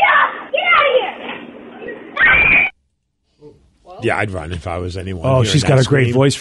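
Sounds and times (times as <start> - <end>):
girl's high-pitched scream at intruder: 0.0 - 1.1, 2.2 - 2.7
speech: 4.0 - 6.3.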